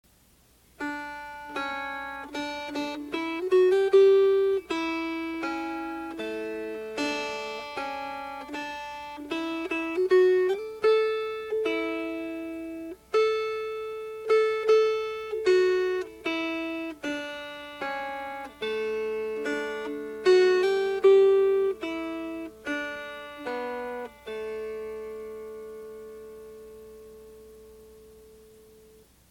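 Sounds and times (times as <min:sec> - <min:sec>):
melody: 0:00.8 - 0:29.0.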